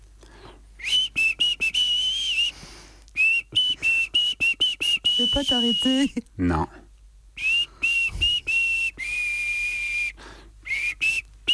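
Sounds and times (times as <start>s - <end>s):
faint hiss: 0.0s - 11.5s
person whistling a simple tune in short clear bursts: 0.8s - 2.6s, 3.2s - 6.1s, 7.4s - 11.5s
speech: 5.3s - 6.8s.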